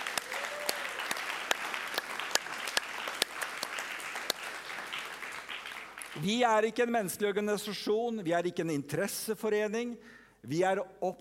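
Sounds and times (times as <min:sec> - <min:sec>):
congregation applauding: 0:00.0 - 0:06.5
speech: 0:06.2 - 0:11.1.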